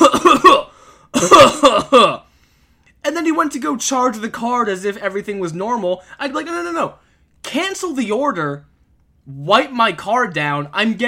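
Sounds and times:
man imitating a person coughing onto a debit card through a thin cloth: 0.0s - 2.3s
speech: 3.5s - 8.7s, 9.3s - 11.0s.

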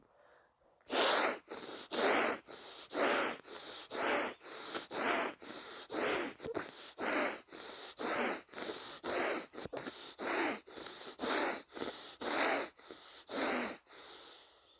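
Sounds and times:
rapid forceful breathwork breathing in and out: 0.0s - 14.7s.

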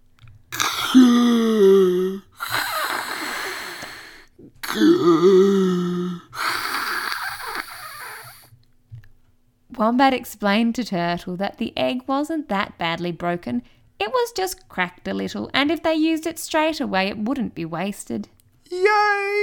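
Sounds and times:
person imitating slow heavy respirator-style breathing: 0.5s - 8.5s
speech: 9.8s - 19.4s.

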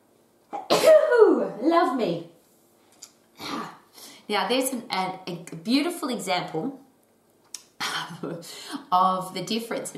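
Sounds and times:
single loud sneeze with sharp intake: 0.5s - 1.4s, 3.4s - 3.8s
speech: 1.6s - 2.3s, 4.3s - 6.8s, 8.2s - 9.9s.

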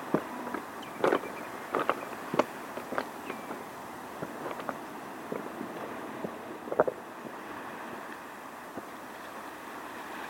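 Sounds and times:
water washing over a stony shore: 0.0s - 10.2s
stones knocking together on a shore: 0.1s - 3.6s, 4.2s - 5.4s.

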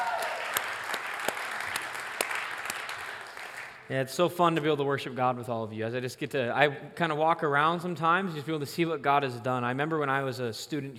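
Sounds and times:
audience applause: 0.0s - 3.8s
speech: 3.9s - 10.9s.

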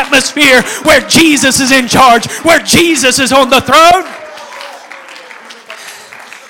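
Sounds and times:
speech: 0.2s - 4.2s
audience clapping during worship: 3.9s - 6.4s.

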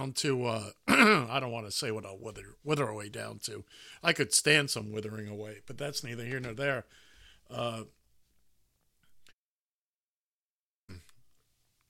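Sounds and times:
speech: 0.0s - 8.0s
throat clearing with gruff rasp: 0.9s - 1.3s, 10.9s - 11.2s
soft breathy sound: 6.8s - 7.6s.

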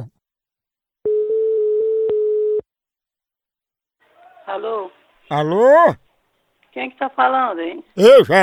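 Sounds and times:
telephone dial tone while placing a call: 1.1s - 2.6s
speech: 4.5s - 6.0s, 6.8s - 8.4s.

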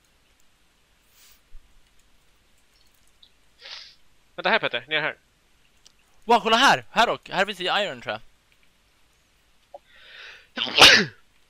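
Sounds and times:
speech: 4.4s - 5.3s, 6.3s - 8.3s, 10.6s - 11.2s
sneeze with breathy inhale: 10.6s - 11.2s.

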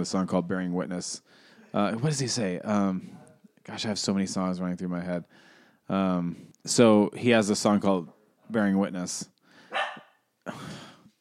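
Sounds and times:
speech: 0.0s - 9.4s
dog barking in the house: 9.7s - 10.2s.

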